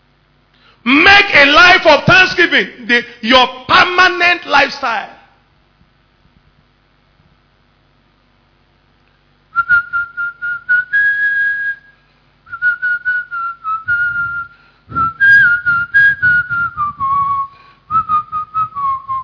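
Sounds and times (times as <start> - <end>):
speech: 0.8 - 5.2
person whistling a song: 9.6 - 19.2.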